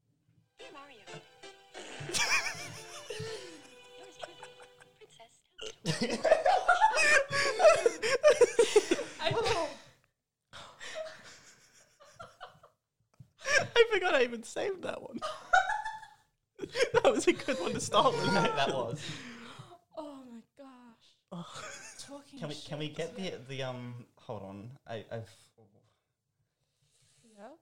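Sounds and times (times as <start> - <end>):
speech: 0.7 - 1.3, 5.9 - 6.4, 14.2 - 15.4, 17.2 - 19.3, 22.6 - 25.4
blaring buzzy fart sound effect with reverb: 1.8 - 2.2
several people laughing and giggling: 1.8 - 5.2, 5.8 - 9.8, 13.4 - 14.3, 15.2 - 19.5.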